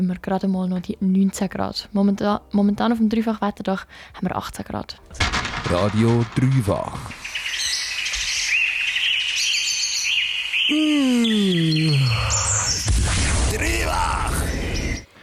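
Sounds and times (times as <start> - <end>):
speech: 0.0 - 7.3, 10.7 - 12.5
lively birdsong with dense chirps and trills: 5.0 - 15.2
low drawn-out groaning call sliding downward: 6.2 - 15.1.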